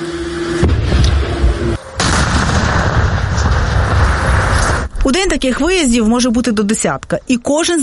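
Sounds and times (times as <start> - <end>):
controlled detonation of explosive ordnance by sappers outdoors: 0.6 - 5.0
speech: 5.2 - 7.8.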